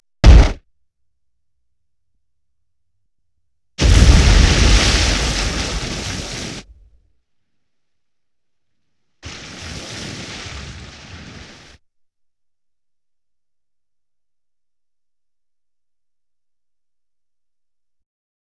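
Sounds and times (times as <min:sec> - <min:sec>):
explosion on 5.1 centre channel: 0:00.2 - 0:00.6, 0:03.8 - 0:07.0, 0:09.2 - 0:11.8.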